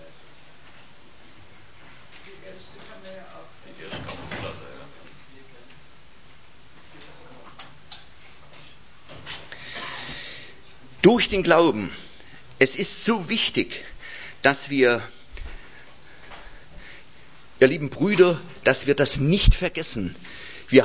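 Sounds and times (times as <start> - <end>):
door shutting with a dull thump: 3.9 - 4.7
speech: 11.0 - 12.0, 12.6 - 15.2, 17.6 - 20.8.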